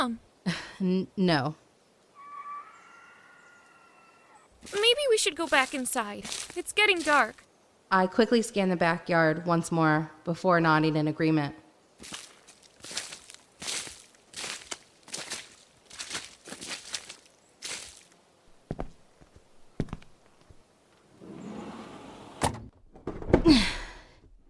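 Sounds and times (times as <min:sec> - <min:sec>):
speech: 0:00.0 - 0:01.6, 0:04.6 - 0:12.2
footsteps: 0:04.5 - 0:07.4, 0:12.0 - 0:20.6
heavy shelf pushed across the floor: 0:21.1 - 0:22.4
glass door shutting: 0:21.2 - 0:23.6.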